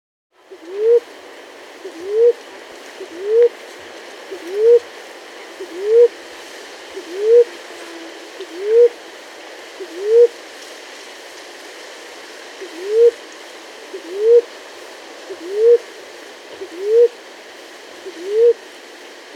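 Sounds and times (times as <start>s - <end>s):
Maroon-chested ground-dove Claravis mondetoura calling: 0.4s - 1.2s, 1.8s - 6.3s, 6.9s - 9.0s, 9.8s - 10.4s, 12.6s - 13.3s, 13.9s - 14.7s, 15.3s - 17.3s, 18.0s - 18.7s.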